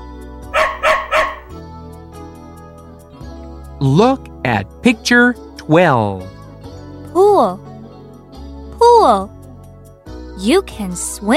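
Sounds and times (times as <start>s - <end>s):
brown dog barking: 0.6s - 1.6s
speech: 3.8s - 6.4s, 7.2s - 7.7s, 9.0s - 9.4s, 10.4s - 11.3s.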